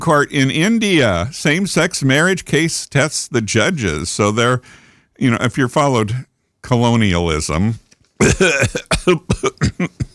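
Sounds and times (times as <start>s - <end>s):
speech: 0.0s - 10.0s
coughing and throat clearing: 8.2s - 10.1s.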